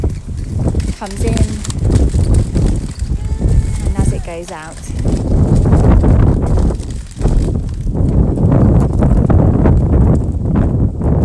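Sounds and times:
faint rhythmic footsteps of someone walking outdoors: 0.0s - 9.0s
loud blustery wind buffeting the microphone: 0.0s - 11.2s
speech: 1.0s - 2.4s, 4.3s - 6.1s.

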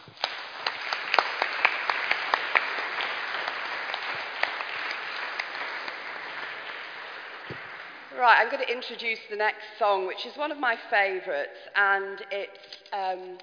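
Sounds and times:
small audience clapping in a room: 0.0s - 8.9s
speech: 8.2s - 13.4s.

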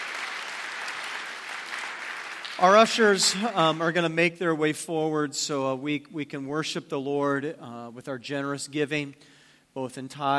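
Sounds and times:
large audience applauding at a morning church service: 0.0s - 3.9s
speech: 2.6s - 10.3s.

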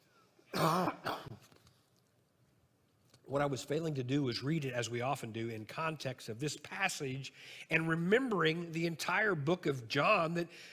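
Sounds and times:
person coughing: 0.5s - 1.4s
speech: 3.3s - 10.7s.

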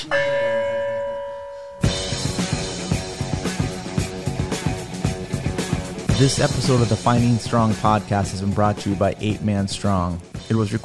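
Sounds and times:
struck gong ringing with bright metallic tone: 0.0s - 4.4s
loud rhythmic music with driving beat: 1.8s - 10.8s
speech: 6.2s - 10.8s.

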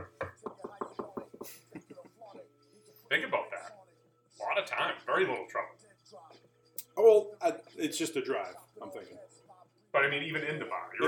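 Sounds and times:
knuckles knocking on wood: 0.0s - 1.6s
speech: 4.7s - 5.7s, 7.0s - 9.2s, 10.0s - 11.0s.

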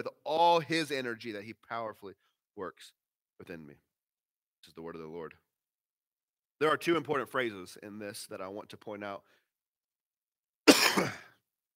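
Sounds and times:
speech: 0.0s - 3.9s, 4.6s - 5.4s, 6.6s - 9.4s
cough and throat clearing caused by allergy drainage: 10.6s - 11.4s.

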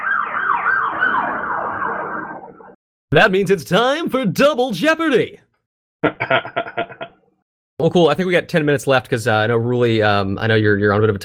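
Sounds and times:
emergency vehicle siren wailing outside: 0.0s - 2.8s
speech: 3.1s - 5.4s, 6.1s - 7.0s, 7.8s - 11.2s
laughter: 6.0s - 7.1s.

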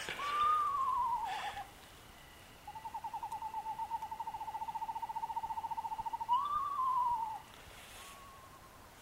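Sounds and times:
eastern screech-owl whinny and pulsing trill: 0.2s - 1.7s, 2.6s - 8.8s.

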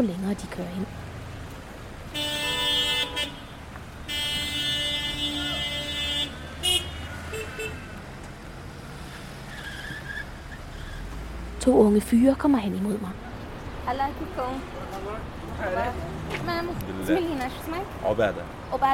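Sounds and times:
speech: 0.0s - 1.1s, 11.6s - 13.3s, 13.9s - 18.9s
car horns honking at refugee camp entrance gate: 2.0s - 8.0s.

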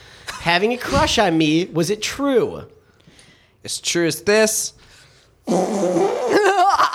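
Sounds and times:
speech: 0.4s - 2.8s, 3.6s - 4.9s, 5.5s - 6.9s
fake fart made with the mouth: 5.4s - 6.6s.

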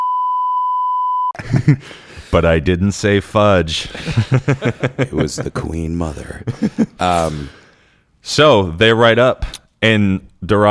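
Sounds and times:
long high-pitched censor beep: 0.0s - 1.4s
laughter: 1.4s - 2.4s, 3.7s - 7.6s
speech: 1.4s - 7.6s, 8.2s - 10.7s.

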